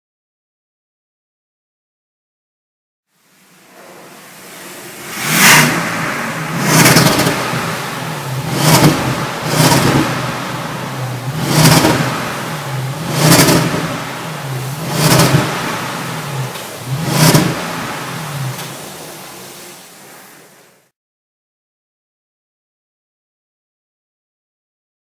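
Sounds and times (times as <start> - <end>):
Bentley Mulsanne engine: 3.3 - 20.4.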